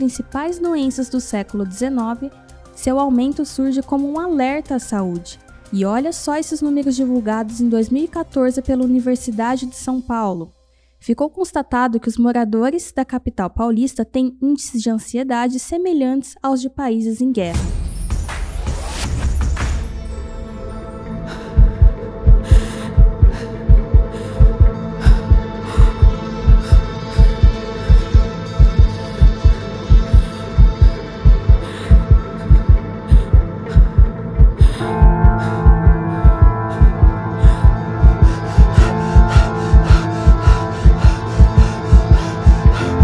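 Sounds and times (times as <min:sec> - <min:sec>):
speech: 0:00.0 - 0:17.8
low droning hum: 0:21.2 - 0:43.0
strong fast heartbeat thumping: 0:21.4 - 0:43.0.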